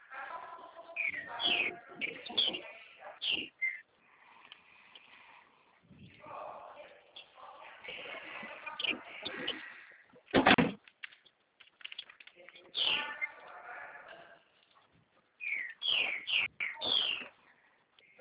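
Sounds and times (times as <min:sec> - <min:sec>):
birds chirping and singing: 0:00.0 - 0:10.1, 0:11.2 - 0:18.1
voice-like sounds: 0:00.0 - 0:10.6, 0:12.2 - 0:18.1
thump: 0:10.3 - 0:10.8.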